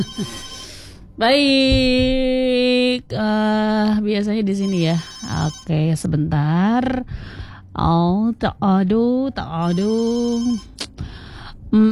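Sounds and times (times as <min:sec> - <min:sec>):
speech: 0:00.0 - 0:00.5, 0:01.2 - 0:11.1, 0:11.7 - 0:11.9
telephone ringing tone during an outgoing phone call: 0:00.0 - 0:01.0, 0:04.6 - 0:05.7, 0:09.6 - 0:10.7.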